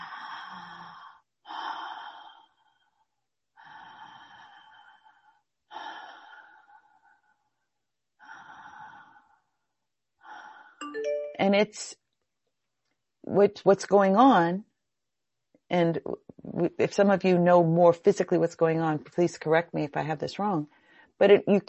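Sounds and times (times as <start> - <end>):
Ujjayi breathing during yoga practice: 0.0 - 7.4, 8.2 - 9.6, 10.2 - 10.8
speech: 11.4 - 12.0, 13.3 - 14.7, 15.7 - 21.6.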